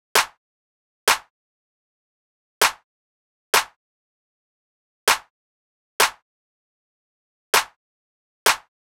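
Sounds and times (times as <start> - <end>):
clap drum loop: 0.2 - 0.4, 1.1 - 1.3, 2.6 - 2.8, 3.6 - 3.8, 5.1 - 5.3, 6.0 - 6.2, 7.6 - 7.8, 8.5 - 8.7.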